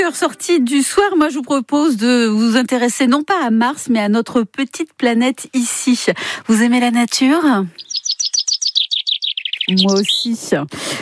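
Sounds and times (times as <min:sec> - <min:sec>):
speech: 0:00.1 - 0:07.9, 0:09.7 - 0:11.0
small birds chirping: 0:06.6 - 0:11.0.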